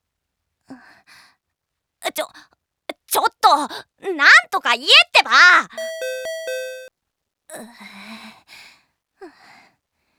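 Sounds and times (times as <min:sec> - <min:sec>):
speech: 0:02.2 - 0:02.5, 0:03.1 - 0:06.2, 0:07.6 - 0:08.2
electronic doorbell chime: 0:05.8 - 0:06.9.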